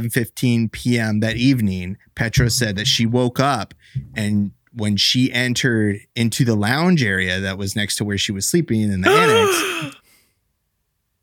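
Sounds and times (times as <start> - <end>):
speech: 0.0 - 10.0
woman gasping as a suspense Foley effect: 9.0 - 10.1.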